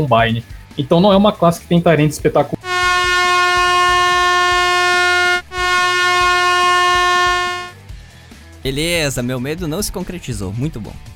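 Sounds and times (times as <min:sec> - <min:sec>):
speech: 0:00.0 - 0:02.6, 0:08.7 - 0:11.1
air horn blaring: 0:02.6 - 0:07.8.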